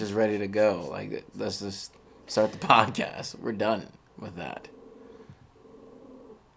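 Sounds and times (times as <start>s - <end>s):
speech: 0.1s - 4.8s
laughter: 2.3s - 3.0s
dogs growling at each other: 4.5s - 6.5s.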